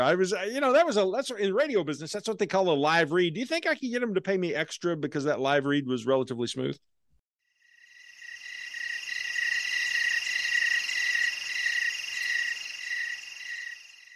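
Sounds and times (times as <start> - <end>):
speech: 0.0 - 7.0
chorus of crickets chirping: 7.6 - 14.1.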